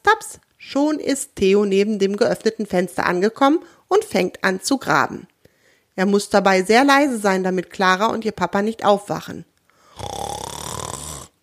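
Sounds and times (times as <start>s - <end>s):
speech: 0.2s - 5.3s, 6.0s - 10.2s
deep rumbling snore: 9.8s - 11.4s.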